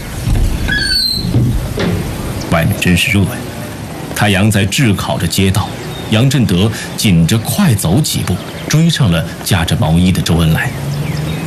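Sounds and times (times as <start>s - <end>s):
steady noise: 0.0s - 11.4s
door being pushed open squeaking and creaking: 0.6s - 2.6s
speech: 2.6s - 3.6s, 4.2s - 10.8s.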